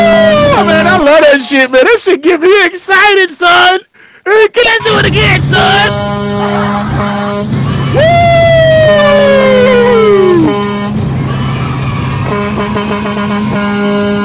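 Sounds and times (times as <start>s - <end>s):
18-wheeler truck air horn blaring: 0.0s - 1.1s, 4.8s - 8.2s, 8.8s - 11.4s, 12.0s - 14.2s
speech: 0.6s - 8.2s
droning background: 4.9s - 14.2s.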